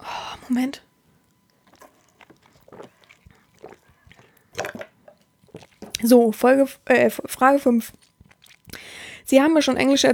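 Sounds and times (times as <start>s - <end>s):
speech: 0.5s - 0.9s, 6.0s - 8.1s, 9.3s - 10.1s
person sipping a drink: 1.5s - 6.1s, 7.9s - 9.0s
faint wet gulps and swallows: 1.6s - 6.1s, 7.8s - 8.9s.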